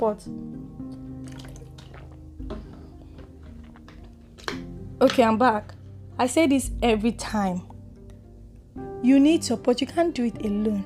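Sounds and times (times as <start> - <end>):
speech: 0.0 - 0.5, 5.0 - 7.7, 9.0 - 10.8
liquid sloshing: 0.9 - 4.5
person gulping water: 0.9 - 4.5.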